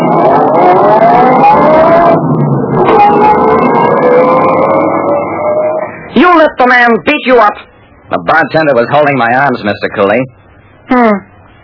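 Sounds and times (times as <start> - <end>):
car engine roaring as the car starts and pulls away: 0.0 - 5.9
speech: 6.9 - 11.2.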